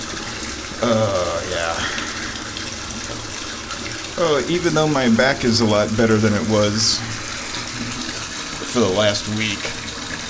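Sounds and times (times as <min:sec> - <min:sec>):
hot water sloshing in a bathtub: 0:00.0 - 0:10.2
speech: 0:00.8 - 0:01.1, 0:04.2 - 0:07.2, 0:08.7 - 0:09.8
person sighing: 0:00.8 - 0:02.5.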